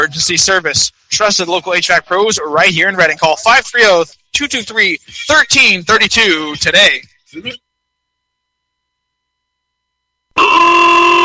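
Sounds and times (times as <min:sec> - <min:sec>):
speech: 0:00.1 - 0:07.6
car horn honking: 0:10.4 - 0:11.2.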